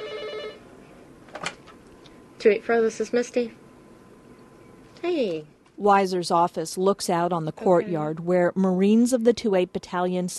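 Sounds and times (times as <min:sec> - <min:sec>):
telephone ringing in an office: 0:00.0 - 0:00.6
speech: 0:02.4 - 0:03.6, 0:05.0 - 0:10.3.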